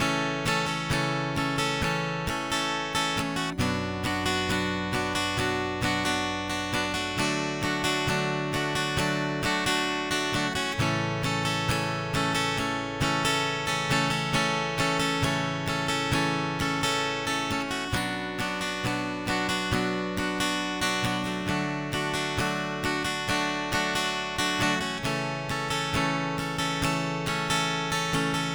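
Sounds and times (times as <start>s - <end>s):
strumming pattern: 0.0s - 28.5s.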